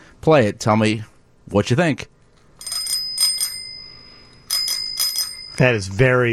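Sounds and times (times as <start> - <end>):
speech: 0.2 - 2.1, 5.6 - 6.3
scooter handlebar bell ringing: 2.6 - 5.7.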